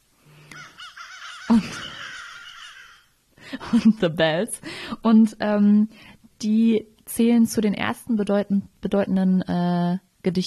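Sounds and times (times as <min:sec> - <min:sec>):
crow cawing: 0:00.5 - 0:03.2
speech: 0:01.5 - 0:01.9, 0:03.7 - 0:10.4.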